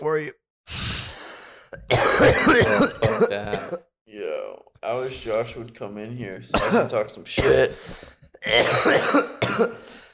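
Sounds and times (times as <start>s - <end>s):
speech: 0.0s - 0.8s, 1.7s - 9.9s
person coughing: 1.8s - 3.8s, 6.6s - 7.8s, 8.4s - 9.9s.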